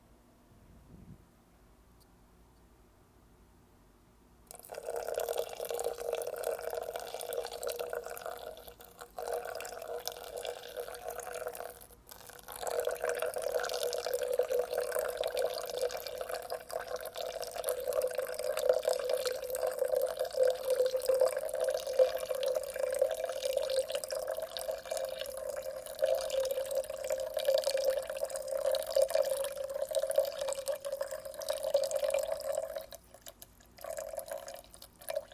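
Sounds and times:
water poured in a steady circular stream: 4.5 - 35.3.

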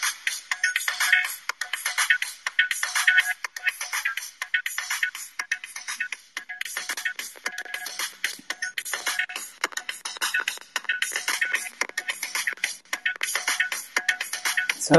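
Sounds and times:
song playing through a small phone speaker: 0.0 - 14.9.

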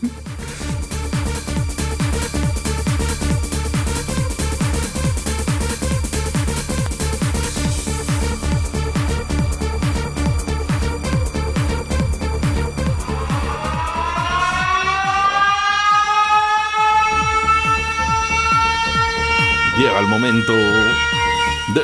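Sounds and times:
siren wailing: 0.1 - 21.8
laughter: 21.7 - 21.8
voice-like warble: 21.7 - 21.8.

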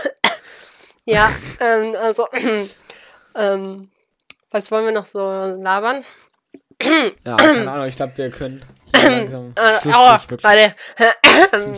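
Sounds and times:
person coughing: 1.1 - 1.6, 8.9 - 9.4, 11.2 - 11.7
speech: 1.1 - 2.8, 3.4 - 11.7.

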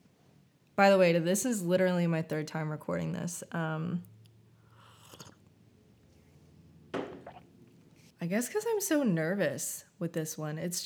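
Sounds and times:
low steady hum: 0.0 - 10.1
speech: 0.8 - 4.1, 8.2 - 10.8
sipping tea: 4.6 - 5.6
faint mouth noises: 4.6 - 6.1.

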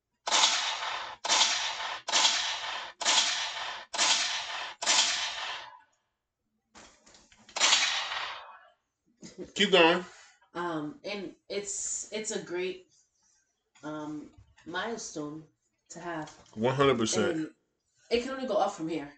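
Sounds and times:
gunshot sound effects: 0.2 - 5.8, 7.5 - 8.6
speech: 9.4 - 12.9, 13.8 - 19.1.

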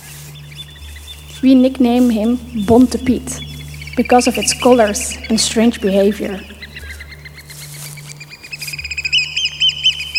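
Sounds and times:
oystercatcher giving shrill piping calls in flight: 0.0 - 10.1
steady low hum: 0.0 - 10.1
speech: 1.4 - 6.6.

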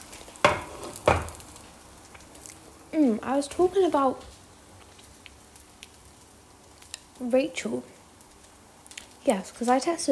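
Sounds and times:
eggs with cheese sizzling in a pan: 0.0 - 10.1
stirring strokes scraping in a pan: 0.1 - 1.2
speech: 3.0 - 4.4, 7.2 - 7.9, 9.2 - 10.1.

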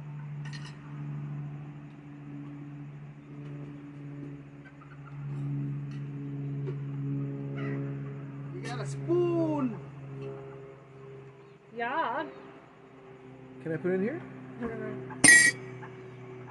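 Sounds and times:
steady low mechanical hum: 0.0 - 16.4
turkeys calling: 4.7 - 5.0
speech: 8.7 - 9.2, 13.7 - 15.2.

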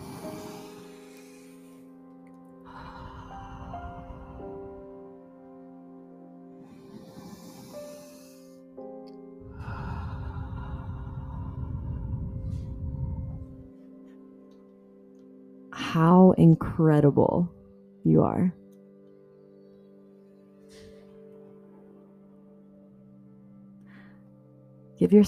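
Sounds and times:
deep breaths inhaled: 0.0 - 2.0, 2.6 - 5.2, 6.6 - 13.7
quiet sustained drone of steady musical tones: 0.0 - 25.2
speech: 15.9 - 18.6, 25.0 - 25.2.

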